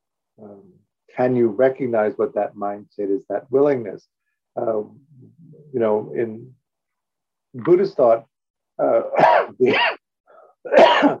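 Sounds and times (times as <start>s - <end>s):
speech: 0.4s - 5.1s, 5.7s - 6.6s, 7.6s - 10.0s, 10.6s - 11.1s
person coughing caused by acid reflux: 9.0s - 10.0s, 10.7s - 11.1s.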